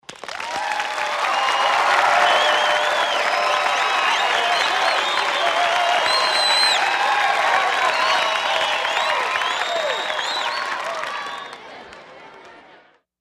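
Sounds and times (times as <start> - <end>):
game show audience applause: 0.0 - 13.0
game show crowd cheering: 0.0 - 13.0
game show audience whistles: 1.2 - 7.0, 7.6 - 11.6.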